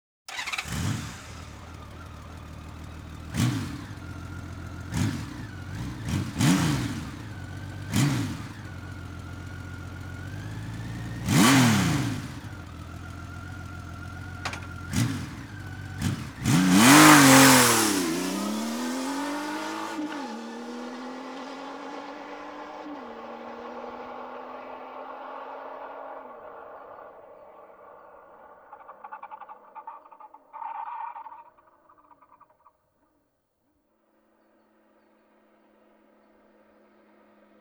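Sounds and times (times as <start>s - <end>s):
motorcycle engine: 0.3s - 32.4s.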